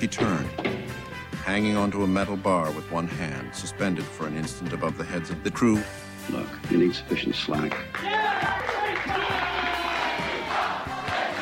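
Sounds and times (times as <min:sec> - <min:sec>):
speech: 0:00.0 - 0:00.6, 0:01.5 - 0:09.3
scattered claps: 0:07.6 - 0:11.4
crowd of men cheering and shouting: 0:07.9 - 0:11.4.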